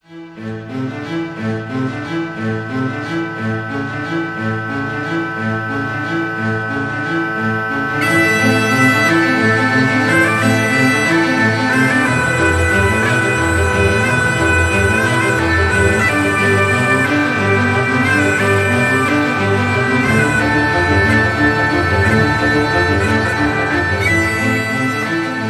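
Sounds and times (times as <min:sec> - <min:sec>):
orchestra playing: 0:00.0 - 0:25.4.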